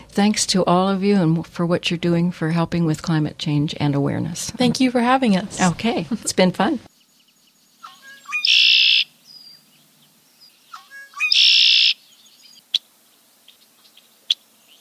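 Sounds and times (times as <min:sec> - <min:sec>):
speech: 0:00.2 - 0:06.9
red-winged blackbird song with clicking notes and buzzy trill: 0:06.9 - 0:12.8
red-winged blackbird sharp chips: 0:07.8 - 0:09.1, 0:10.7 - 0:12.0.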